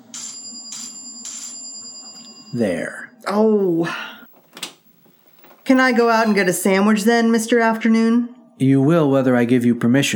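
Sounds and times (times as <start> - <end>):
electric doorbell ringing in harsh bursts: 0.0 - 2.6
speech: 2.5 - 4.1, 5.7 - 10.1.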